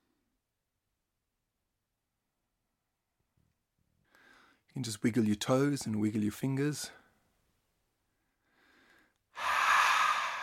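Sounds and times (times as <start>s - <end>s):
slow deep breathing in and out: 4.0s - 4.7s, 8.3s - 10.4s
speech: 4.8s - 7.0s.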